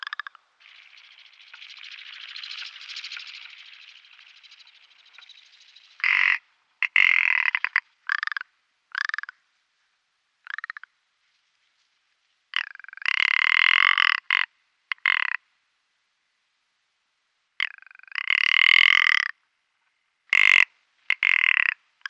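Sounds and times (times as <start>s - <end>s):
male ptarmigan giving rattling display croaks: 0.0s - 9.4s, 10.4s - 10.9s, 12.5s - 15.4s, 17.6s - 19.3s, 20.3s - 22.0s.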